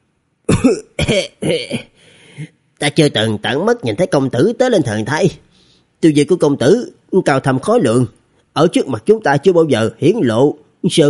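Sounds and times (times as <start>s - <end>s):
dry harsh coughing from someone with a chest and lung injury: 0.5s - 2.5s
speech: 0.6s - 5.4s, 6.0s - 11.0s.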